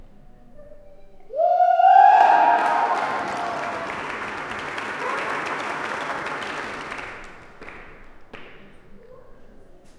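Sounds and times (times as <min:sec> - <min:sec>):
audience at indoor swimming pool: 0:01.4 - 0:08.1.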